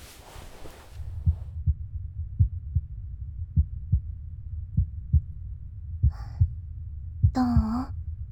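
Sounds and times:
rustle: 0.0 - 1.2
human heartbeat heard with an ear pressed to the chest: 0.0 - 8.0
low rumbling background: 0.0 - 8.2
speech: 7.4 - 7.6.

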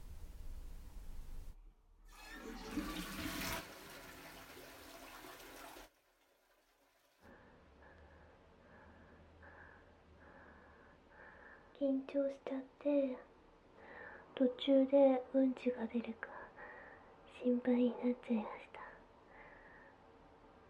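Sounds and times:
toilet flushing: 2.1 - 7.2
speech: 11.8 - 13.3, 14.4 - 16.3, 17.4 - 18.7.

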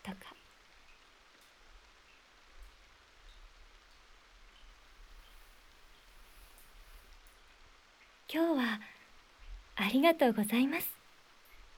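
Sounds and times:
rain pattering on leaves and into puddles: 0.0 - 11.7
scattered drips: 0.0 - 11.7
speech: 8.3 - 9.0, 9.8 - 11.0.

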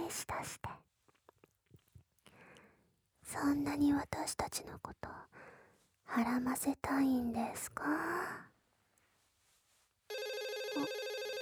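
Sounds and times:
speech: 3.3 - 8.5, 10.1 - 11.0
telephone ringing with loud steady electronic trill: 10.1 - 11.4.

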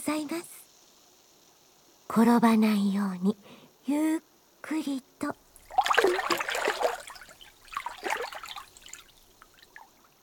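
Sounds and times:
speech: 0.1 - 0.6, 2.1 - 5.4
water splashing and sloshing as someone enters a hot-water bathtub: 5.5 - 10.2.

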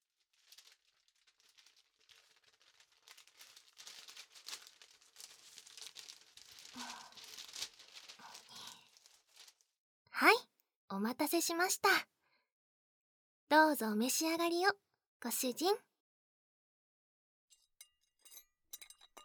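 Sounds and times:
stiff paper apron crinkling and rustling while being unfolded and put on: 0.0 - 9.8
speech: 10.2 - 12.1, 13.5 - 15.9.

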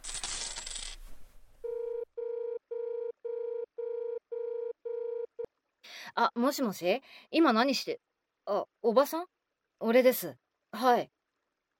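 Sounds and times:
10-yen coins clattering into a payphone: 0.0 - 1.0
steady electronic phone ringing tone: 1.6 - 5.5
speech: 6.2 - 11.2.

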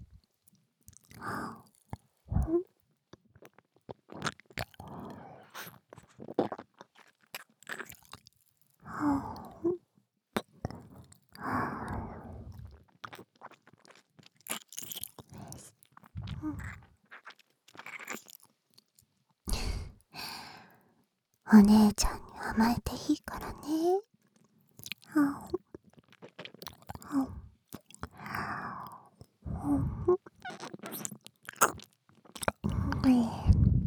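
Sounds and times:
chewing and crunching food: 0.0 - 9.8, 10.4 - 20.8, 23.4 - 33.8
soft sighs and breaths: 2.3 - 2.7, 4.8 - 5.7, 8.8 - 9.8, 10.7 - 12.8, 15.4 - 16.9, 19.5 - 20.9, 21.5 - 24.0, 25.1 - 25.6, 27.0 - 30.3, 32.6 - 33.8
speech: 21.5 - 24.0.

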